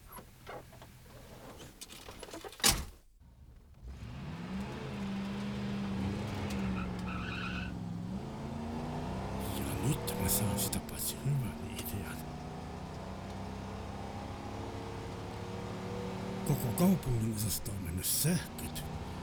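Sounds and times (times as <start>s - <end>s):
car engine starting and revving through gear changes: 3.8s - 16.8s, 18.1s - 19.2s
speech: 16.5s - 19.1s.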